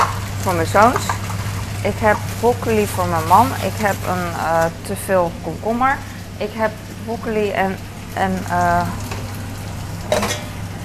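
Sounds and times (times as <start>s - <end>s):
oil spattering: 0.0s - 5.0s, 8.9s - 10.8s
chicken frying and sizzling in a pan: 0.0s - 10.8s
low hum: 0.0s - 10.8s
speech: 0.4s - 1.2s, 1.8s - 9.0s.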